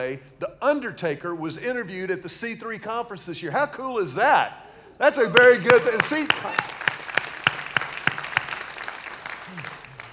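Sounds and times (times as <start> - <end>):
speech: 0.0 - 6.9
audience giving a light golf clap at a church leadership conference: 5.4 - 10.1.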